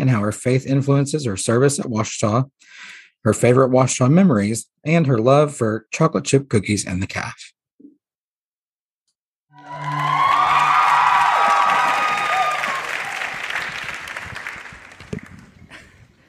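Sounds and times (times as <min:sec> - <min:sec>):
speech: 0:00.0 - 0:07.6
crowd applause: 0:09.6 - 0:15.9.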